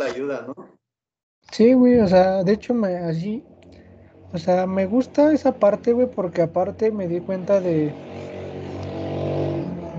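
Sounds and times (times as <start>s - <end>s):
speech: 0.1s - 0.8s, 1.4s - 3.5s, 4.3s - 8.3s
motorcycle engine passing: 2.8s - 9.9s.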